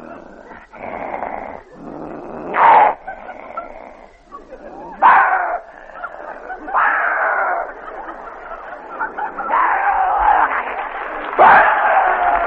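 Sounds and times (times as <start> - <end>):
several dogs snarling and growling in a fight: 0.0 - 12.4
laughter: 2.9 - 12.4.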